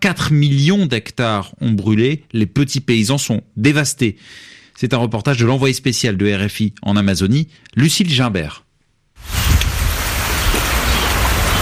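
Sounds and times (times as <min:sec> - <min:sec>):
speech: 0:00.0 - 0:08.6
steady rain falling on a forest: 0:09.2 - 0:11.6.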